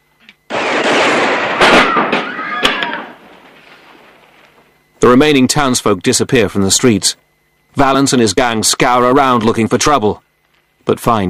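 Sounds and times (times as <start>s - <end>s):
gunshots blasting a painted sign: 0.5s - 4.3s
loud dense crashing noise of a painted sign shot to pieces: 0.5s - 4.5s
speech: 5.0s - 10.2s, 10.8s - 11.2s.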